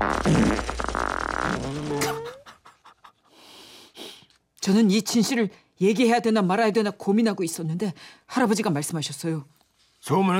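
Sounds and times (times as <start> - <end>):
loud fart: 0.0 - 2.5
speech: 0.2 - 0.7, 4.6 - 10.3.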